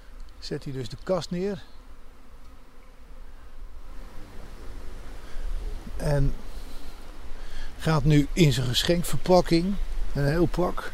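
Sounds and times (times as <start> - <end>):
swarm of bees buzzing: 0.0 - 10.9
speech: 0.4 - 1.8, 6.0 - 6.5, 7.8 - 10.9.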